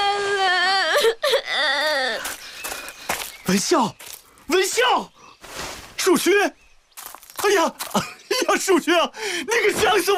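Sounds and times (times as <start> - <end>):
child crying: 0.0 - 2.3
speech: 3.5 - 5.2, 6.0 - 6.6, 7.4 - 10.1.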